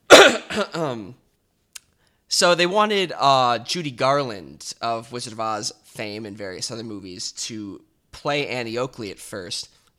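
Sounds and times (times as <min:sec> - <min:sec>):
person coughing with throaty hacks: 0:00.0 - 0:01.2
speech: 0:00.6 - 0:01.2, 0:02.4 - 0:09.8.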